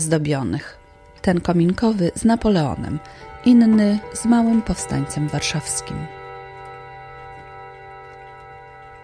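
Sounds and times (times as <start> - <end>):
speech: 0.0 - 6.2
antique clock striking on bronze gong rods in a clockmaker's workshop: 1.1 - 7.0.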